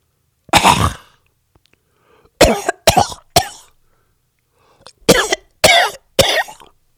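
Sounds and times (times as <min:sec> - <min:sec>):
person imitating a woman's coughing: 0:00.5 - 0:01.2, 0:02.4 - 0:03.7, 0:05.1 - 0:06.7.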